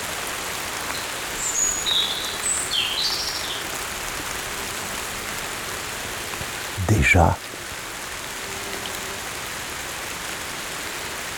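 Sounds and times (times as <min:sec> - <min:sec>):
light rain: 0:00.0 - 0:11.3
speech: 0:07.0 - 0:07.4.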